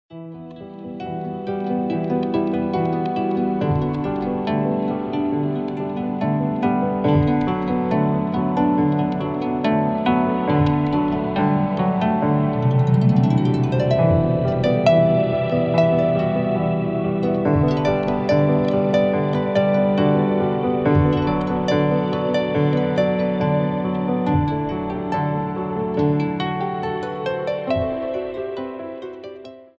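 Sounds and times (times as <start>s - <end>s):
harpiano notes: 0.1s - 29.7s.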